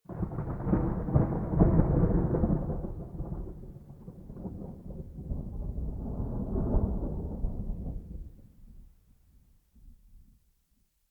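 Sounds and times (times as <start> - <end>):
rolling thunder at night: 0.1 - 8.9.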